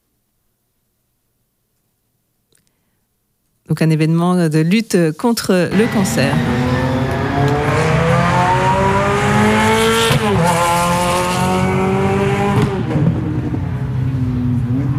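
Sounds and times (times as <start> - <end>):
speech: 3.7 - 6.6
racing car engines roaring around a circuit: 5.7 - 14.9.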